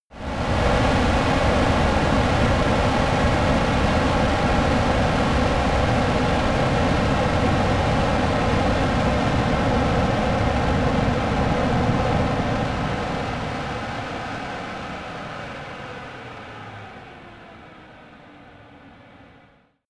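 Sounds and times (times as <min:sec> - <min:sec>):
Flanker-C military jet turbine slowing down: 0:00.1 - 0:19.8.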